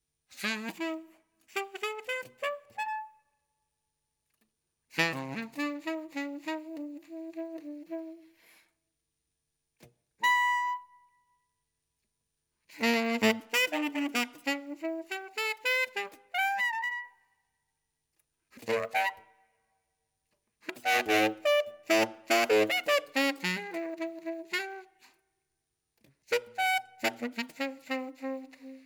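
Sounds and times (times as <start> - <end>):
saxophone solo: 0.3 - 3.2, 5.0 - 8.6, 10.2 - 11.1, 12.7 - 17.2, 18.6 - 19.3, 20.6 - 25.2, 26.2 - 28.8.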